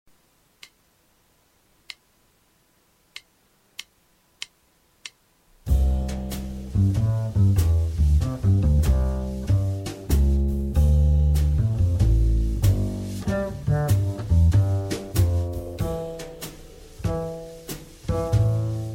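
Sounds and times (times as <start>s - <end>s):
jazz backing music: 5.6s - 18.9s.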